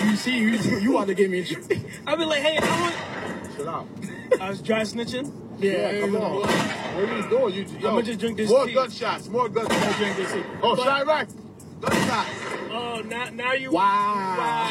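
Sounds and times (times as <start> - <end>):
speech: 0.2 - 14.7
gunshots: 6.4 - 7.1, 9.6 - 10.4, 11.8 - 12.8.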